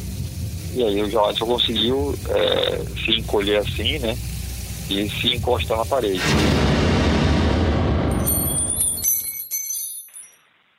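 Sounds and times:
speech: 0:00.7 - 0:06.7
grenade blast with heavy rumble: 0:06.2 - 0:08.8
glass and debris tinkling and settling: 0:08.1 - 0:10.7.

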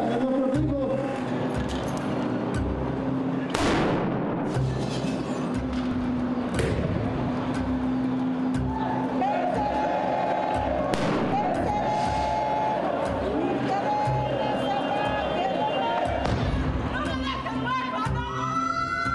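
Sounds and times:
dense noisy crowd at a rally: 0:00.0 - 0:19.1
firecracker bang at a rally: 0:03.5 - 0:05.1, 0:10.9 - 0:12.3, 0:16.2 - 0:16.8
people shouting at a rally: 0:08.6 - 0:19.1.

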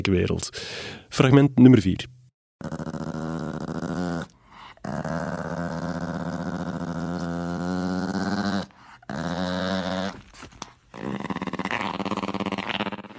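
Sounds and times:
speech: 0:00.0 - 0:02.2
dog making revving growl-like sounds mimicking a motorcycle engine: 0:02.6 - 0:13.1.

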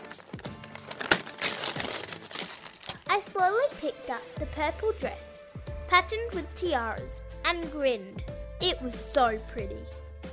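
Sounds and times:
thin tissue paper rustling and crinkling as it is peeled off: 0:00.0 - 0:03.1
speech: 0:03.1 - 0:05.3, 0:05.9 - 0:10.0.

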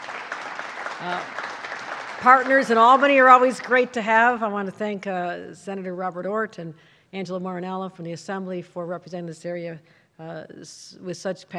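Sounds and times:
crowd applauding: 0:00.0 - 0:04.0
speech: 0:01.0 - 0:01.4, 0:02.2 - 0:11.5.

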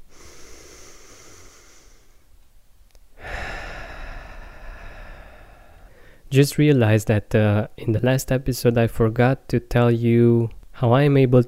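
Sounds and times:
person taking a deep breath in and out: 0:00.0 - 0:02.3, 0:03.1 - 0:06.3
speech: 0:06.3 - 0:11.4.

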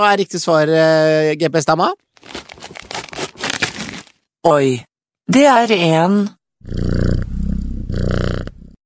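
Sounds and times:
speech: 0:00.0 - 0:02.4, 0:04.4 - 0:07.1
cat purring with a deep rumbling buzz: 0:06.6 - 0:08.8.

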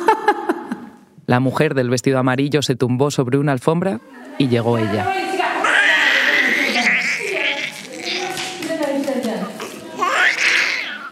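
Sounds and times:
laughter: 0:00.0 - 0:01.0, 0:05.4 - 0:11.1
speech: 0:01.3 - 0:05.3
newborn baby crying: 0:05.4 - 0:08.7, 0:09.4 - 0:11.1.

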